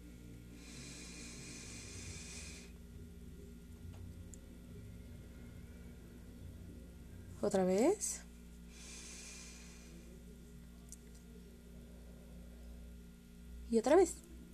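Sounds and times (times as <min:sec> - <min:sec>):
steady low engine-like hum: 0:00.0 - 0:13.2
slow deep breathing: 0:00.5 - 0:02.8, 0:08.7 - 0:10.3
speech: 0:07.4 - 0:08.3, 0:13.7 - 0:14.3.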